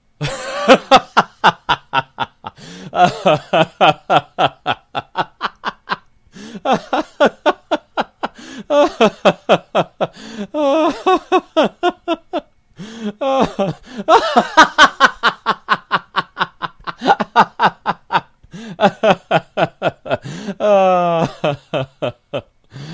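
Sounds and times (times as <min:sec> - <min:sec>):
long laugh of a man: 0:00.2 - 0:22.9.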